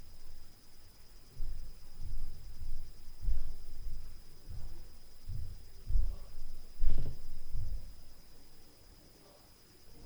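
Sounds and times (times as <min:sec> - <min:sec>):
low-frequency night noise from upstairs: 0:01.4 - 0:08.3.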